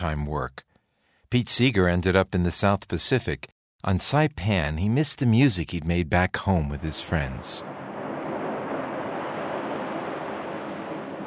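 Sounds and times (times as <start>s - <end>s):
speech: 0.0s - 0.7s, 1.3s - 7.8s
waves lapping the shore: 7.4s - 11.2s.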